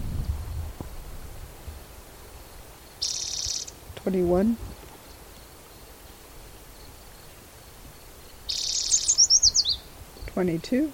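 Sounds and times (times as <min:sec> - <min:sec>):
spotted towhee buzzy trill: 0:02.8 - 0:03.8, 0:05.0 - 0:09.9
speech: 0:04.0 - 0:04.7, 0:10.4 - 0:10.9.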